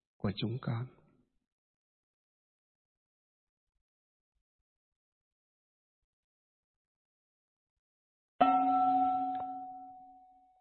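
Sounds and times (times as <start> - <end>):
speech: 0.2 - 1.0
bell struck during a tea ceremony: 8.4 - 10.5.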